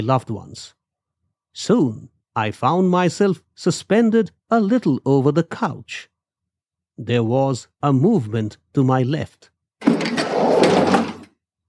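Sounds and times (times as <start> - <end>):
speech: 0.0 - 0.8, 1.6 - 6.1, 7.0 - 10.0
paramedic opening a hospital passageway door with scraping rumble: 9.8 - 11.3.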